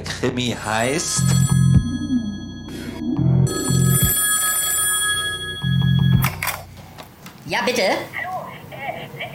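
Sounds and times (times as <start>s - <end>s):
speech: 0.2s - 1.6s, 7.5s - 8.2s
telephone ringing with shrill electronic trills: 1.1s - 6.8s.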